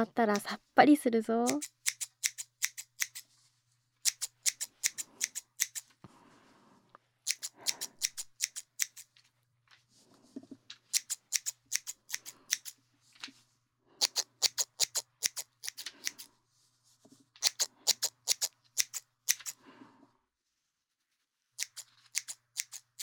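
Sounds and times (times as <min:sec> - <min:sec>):
speech: 0:00.0 - 0:01.8
scissors cutting hair: 0:01.4 - 0:03.3, 0:04.0 - 0:05.9, 0:07.2 - 0:09.2, 0:10.9 - 0:12.8, 0:14.0 - 0:16.3, 0:17.4 - 0:19.6, 0:21.6 - 0:23.0.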